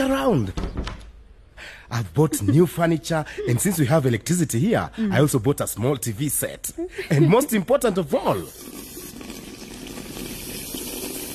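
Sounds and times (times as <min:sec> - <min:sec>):
speech: 0:00.0 - 0:00.6, 0:01.9 - 0:08.8
laughter: 0:02.0 - 0:04.3, 0:06.8 - 0:08.5
water running from a tap in a new house: 0:08.3 - 0:11.3.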